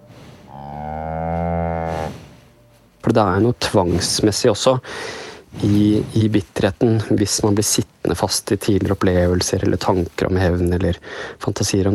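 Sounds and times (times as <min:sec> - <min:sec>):
cow mooing: 0:00.5 - 0:02.3
speech: 0:03.1 - 0:11.9.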